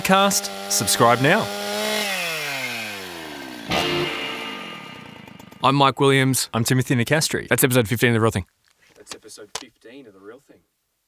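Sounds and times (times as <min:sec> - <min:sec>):
speech: 0:00.0 - 0:02.1, 0:05.6 - 0:08.6, 0:09.3 - 0:10.7
chainsaw engine winding down: 0:00.0 - 0:06.0.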